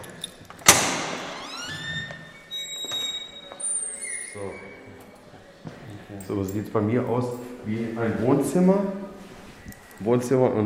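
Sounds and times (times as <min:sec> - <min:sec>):
heavy prison cell door lock clunking: 0:00.0 - 0:02.2
heavy prison cell door creaking open: 0:00.6 - 0:04.9
speech: 0:06.1 - 0:09.0, 0:10.0 - 0:10.6.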